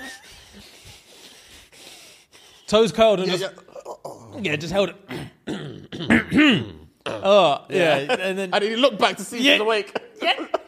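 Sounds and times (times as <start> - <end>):
person imitating heavy nose breathing: 0.0 - 2.8
speech: 2.7 - 3.7, 4.4 - 5.1, 6.0 - 10.5.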